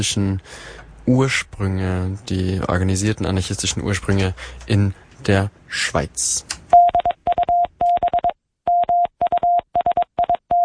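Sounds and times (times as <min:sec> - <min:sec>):
speech: 0:00.0 - 0:06.6
fairly high-pitched Morse code telegraph tone: 0:06.8 - 0:10.6.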